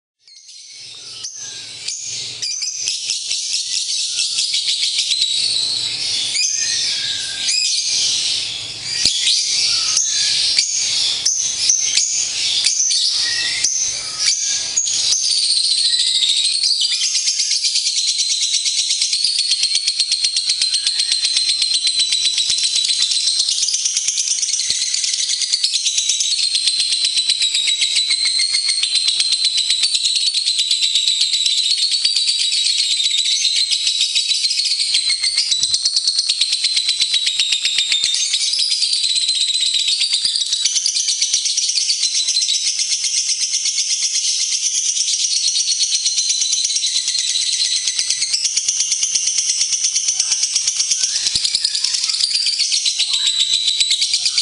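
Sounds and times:
lovebird long chattering call: 0.4s - 54.4s.

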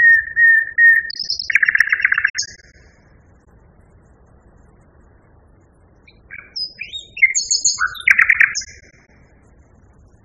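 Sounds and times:
common nightingale singing: 0.0s - 3.0s, 6.0s - 9.2s.

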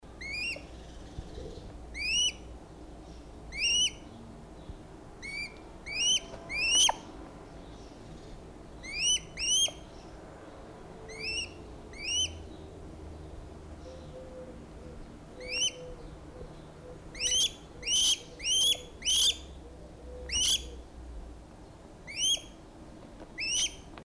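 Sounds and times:
Athene noctua calling: 0.2s - 2.5s, 3.5s - 4.1s, 5.2s - 7.1s, 8.8s - 9.8s, 11.1s - 12.5s, 13.9s - 20.8s, 22.1s - 22.6s, 23.4s - 23.9s.

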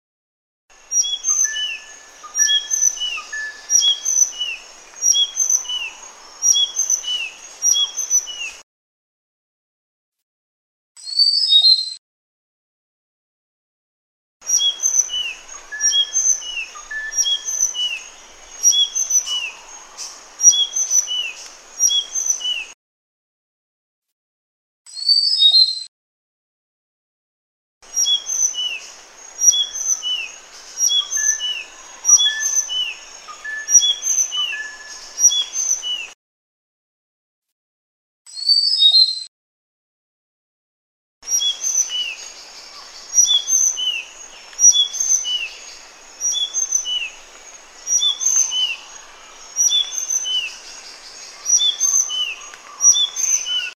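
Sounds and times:
sikatan sunda bird singing: 0.8s - 8.6s, 14.4s - 22.8s, 27.9s - 36.2s, 41.3s - 53.7s.

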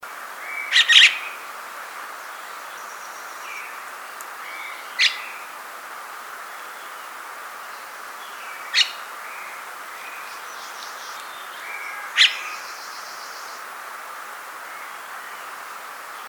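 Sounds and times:
jalak kapas bird calling: 0.4s - 1.4s, 2.3s - 5.5s, 6.4s - 13.7s.

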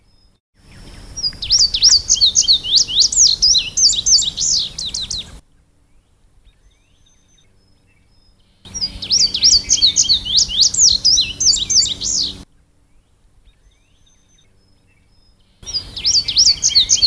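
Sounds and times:
indigo bunting song: 0.6s - 5.4s, 8.7s - 12.4s, 15.6s - 17.0s.

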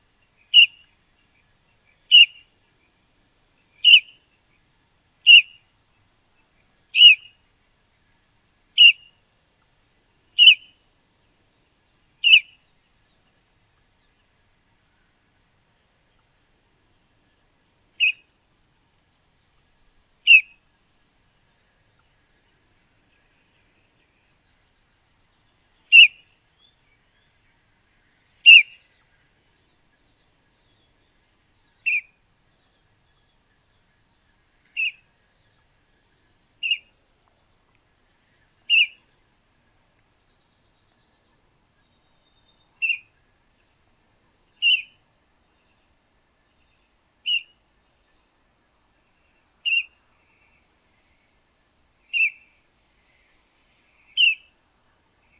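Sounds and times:
juvenile red-whiskered bulbul calling: 0.5s - 0.8s, 2.1s - 2.4s, 3.8s - 4.1s, 5.3s - 5.6s, 7.0s - 7.3s, 8.8s - 9.1s, 10.4s - 10.7s, 12.2s - 12.6s, 18.0s - 18.4s, 20.3s - 20.6s, 25.9s - 26.2s, 28.4s - 28.8s, 31.2s - 32.2s, 34.8s - 35.0s, 36.6s - 36.9s, 38.7s - 39.0s, 42.8s - 43.0s, 44.6s - 45.0s, 47.2s - 47.5s, 49.6s - 49.9s, 52.1s - 52.4s, 54.1s - 54.5s.

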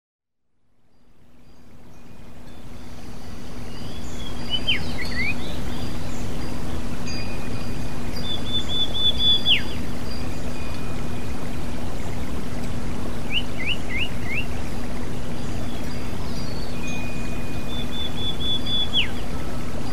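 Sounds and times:
water trickling: 0.7s - 19.9s
kacer magpie robin singing: 3.7s - 6.3s, 8.2s - 9.9s, 13.2s - 14.6s, 15.6s - 19.3s.

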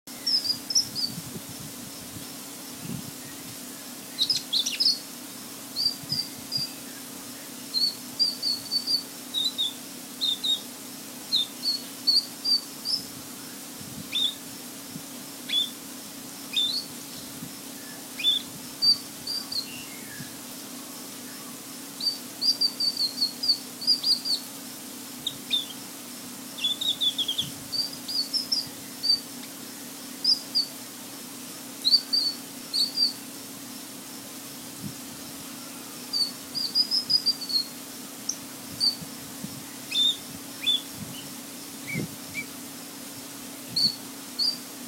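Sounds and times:
cucak rante bird singing: 0.1s - 1.2s, 3.2s - 5.1s, 5.7s - 10.7s, 11.3s - 14.4s, 15.5s - 15.8s, 16.5s - 24.5s, 25.2s - 25.8s, 26.6s - 30.8s, 31.8s - 33.2s, 35.4s - 39.0s, 39.6s - 42.5s, 43.7s - 44.6s.

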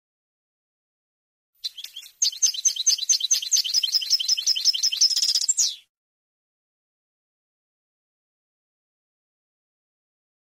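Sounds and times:
European goldfinch singing jingling chirps and twitters: 1.6s - 5.9s.

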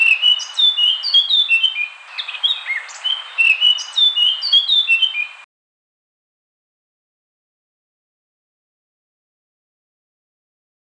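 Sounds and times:
Eurasian blackcap song: 0.0s - 5.5s.

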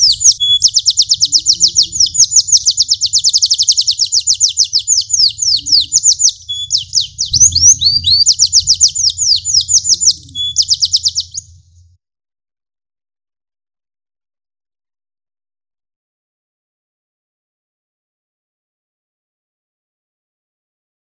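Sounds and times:
large standard canary singing trills: 0.0s - 11.6s
faint low hum: 0.0s - 12.0s.

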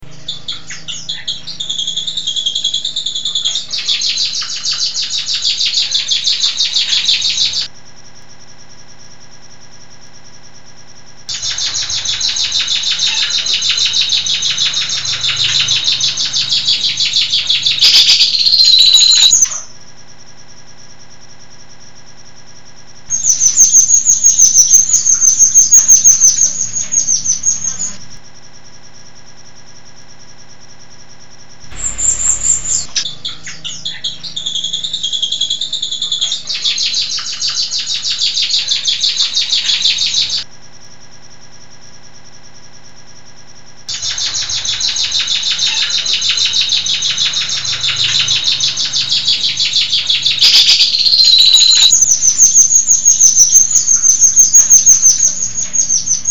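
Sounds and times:
rio rio bird singing: 0.0s - 7.7s, 11.3s - 19.7s, 23.1s - 28.2s, 31.7s - 40.5s, 43.9s - 56.2s.

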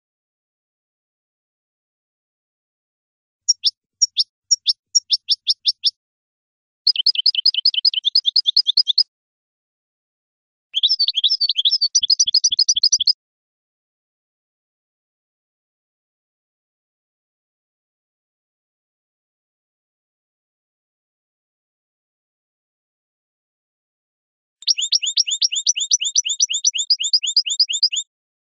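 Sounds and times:
European goldfinch song: 3.5s - 6.0s, 6.9s - 9.1s, 10.8s - 13.2s, 24.6s - 28.1s.

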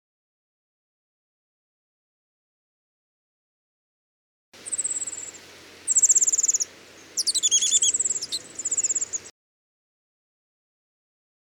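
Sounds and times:
warbler alarm call: 4.6s - 9.3s.

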